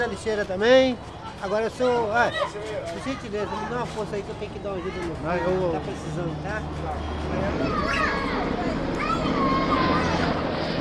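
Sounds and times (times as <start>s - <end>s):
speech: 0.0s - 9.8s
children chattering: 0.0s - 10.7s
police helicopter rotor roar above a favela: 0.0s - 10.7s.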